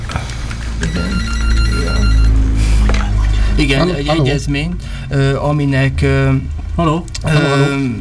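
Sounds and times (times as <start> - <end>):
dense noisy background: 0.0 - 7.9
telephone ringing with a steady electronic tone: 0.8 - 2.6
speech: 3.6 - 7.9.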